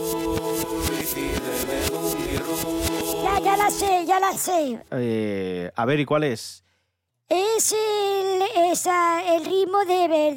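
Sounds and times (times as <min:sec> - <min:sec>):
song played backwards: 0:00.0 - 0:04.4
speech: 0:03.4 - 0:06.6, 0:07.3 - 0:10.3.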